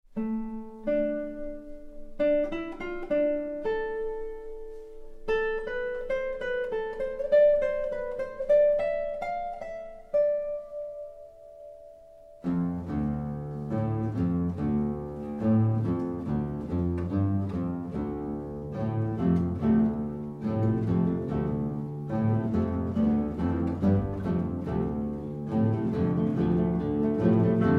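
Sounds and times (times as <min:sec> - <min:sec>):
electric guitars playing: 0:00.2 - 0:27.7.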